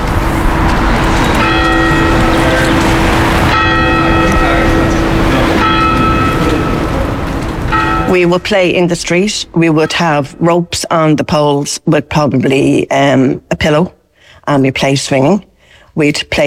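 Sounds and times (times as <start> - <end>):
church bells ringing: 0.0 - 11.4
rumble of traffic-like noise: 0.0 - 13.8
speech: 8.1 - 16.4.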